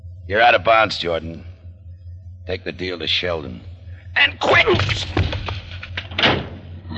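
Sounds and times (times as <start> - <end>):
speech: 0.3 - 1.5, 2.4 - 5.6
car door slam: 4.7 - 6.6.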